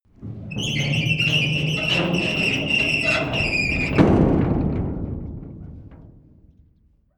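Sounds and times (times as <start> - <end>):
metal gate opening slowly: 0.2 - 4.7.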